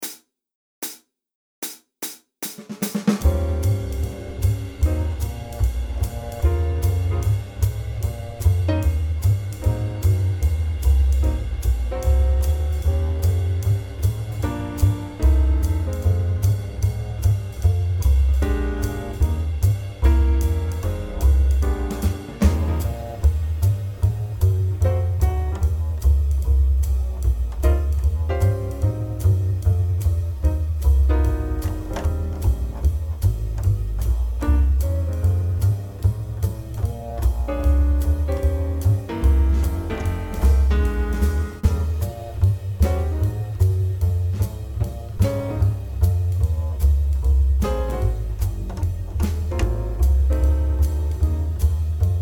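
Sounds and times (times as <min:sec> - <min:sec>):
jazz backing track in E flat at 150: 0:03.0 - 0:52.1.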